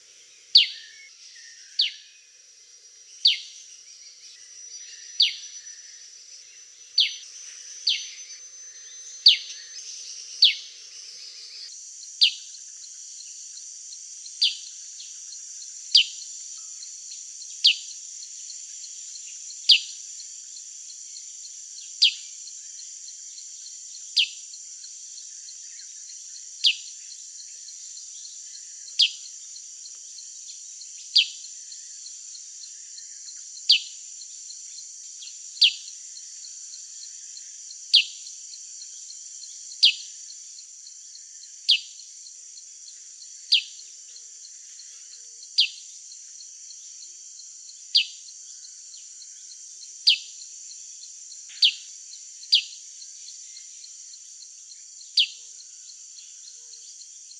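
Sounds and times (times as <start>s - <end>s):
sooty-headed bulbul singing: 0.0s - 16.9s, 25.2s - 42.0s, 42.8s - 45.9s, 47.7s - 50.3s, 51.5s - 57.3s.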